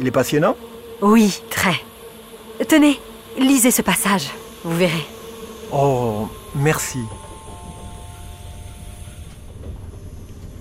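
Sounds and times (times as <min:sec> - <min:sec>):
speech: 0:00.0 - 0:01.9, 0:02.6 - 0:07.2
train arriving at Nîmes station terminus: 0:05.7 - 0:10.5.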